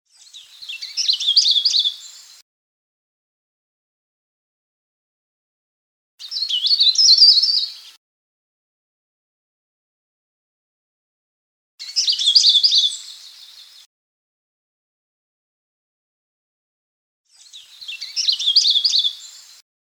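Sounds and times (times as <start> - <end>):
Sulawesi leaf warbler chirping: 0.1 - 2.4, 6.2 - 8.0, 11.8 - 13.8, 17.4 - 19.6.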